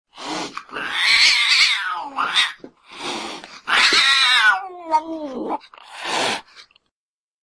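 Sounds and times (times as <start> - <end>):
domestic pet cat meowing: 0.7 - 2.6, 3.7 - 5.6.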